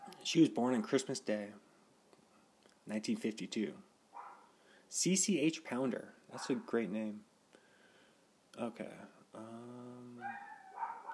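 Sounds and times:
speech: 0:00.2 - 0:01.7, 0:02.9 - 0:03.9, 0:04.9 - 0:07.3, 0:08.6 - 0:10.5
several small dogs yapping and whining: 0:04.2 - 0:04.5, 0:10.2 - 0:11.1.

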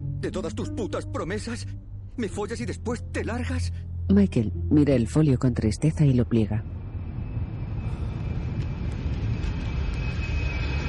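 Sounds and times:
airplane descending and landing on a runway at night: 0:00.0 - 0:10.8
speech: 0:00.2 - 0:06.7.

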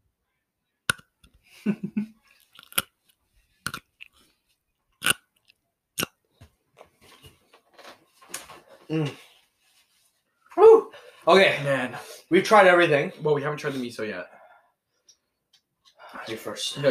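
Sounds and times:
speech: 0:01.6 - 0:02.2, 0:08.9 - 0:09.2, 0:11.2 - 0:14.4, 0:16.3 - 0:16.9
wet squelchy chewing: 0:02.3 - 0:02.9, 0:03.6 - 0:04.3
crisp crunching of a pickle: 0:02.3 - 0:03.0, 0:03.6 - 0:04.3, 0:05.0 - 0:06.1.

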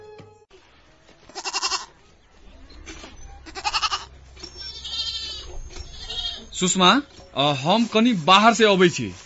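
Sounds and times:
goats bleating: 0:01.3 - 0:02.0, 0:03.4 - 0:06.6
low steady rumble: 0:02.0 - 0:07.4
speech: 0:06.6 - 0:09.2.

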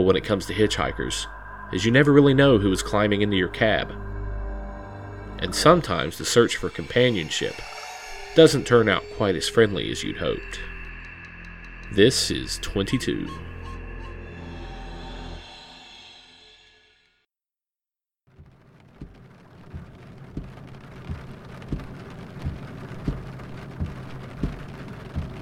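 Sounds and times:
speech: 0:00.0 - 0:04.1, 0:05.4 - 0:07.8, 0:08.4 - 0:10.7, 0:11.9 - 0:13.5
tonal hum: 0:00.0 - 0:17.0, 0:19.1 - 0:25.4
heavy rain pelting a vehicle windshield on a dark highway: 0:18.3 - 0:25.4.

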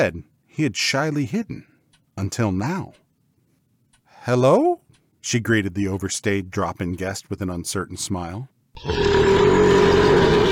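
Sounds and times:
speech: 0:00.0 - 0:03.0, 0:04.2 - 0:10.5
wolf giving a loud belch: 0:08.8 - 0:10.5.

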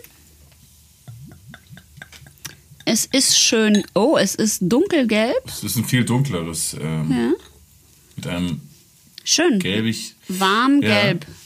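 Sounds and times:
citrus beer glugging as poured into a glass: 0:01.1 - 0:02.9
speech: 0:02.9 - 0:07.5, 0:08.2 - 0:08.7, 0:09.3 - 0:11.4.

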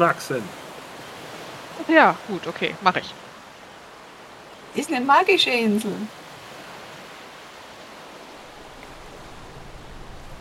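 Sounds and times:
speech: 0:00.0 - 0:00.6, 0:01.8 - 0:03.2, 0:04.7 - 0:06.2
water rushing in as the lower part of a ship fills: 0:00.0 - 0:10.3
low rumble: 0:08.4 - 0:10.3.

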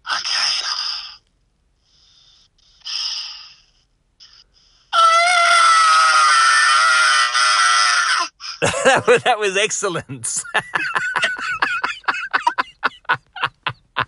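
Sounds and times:
person imitating a screech with their voice: 0:04.2 - 0:08.6
laughter: 0:08.6 - 0:09.4, 0:10.3 - 0:14.0
speech: 0:08.8 - 0:11.0.

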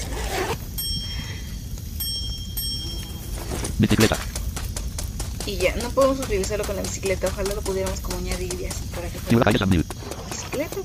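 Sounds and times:
low rumble: 0:00.0 - 0:10.8
small metal bell being shaken: 0:00.8 - 0:03.8
speech: 0:03.8 - 0:04.3, 0:05.5 - 0:09.9, 0:10.6 - 0:10.8.

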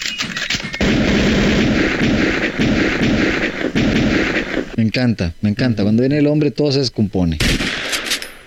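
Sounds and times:
heavy gunfire at a shooting range during a shooting course: 0:00.8 - 0:04.8, 0:07.4 - 0:08.4
speech: 0:05.0 - 0:07.8.

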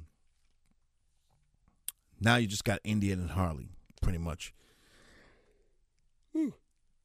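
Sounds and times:
speech: 0:02.2 - 0:04.7, 0:06.4 - 0:06.6
short stifled yawn: 0:06.3 - 0:06.6.

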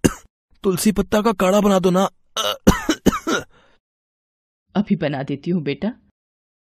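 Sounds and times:
harsh loud coughs: 0:00.0 - 0:00.3, 0:02.4 - 0:03.5
speech: 0:00.6 - 0:02.7, 0:04.8 - 0:06.0
faint raspy breath: 0:03.5 - 0:03.8.

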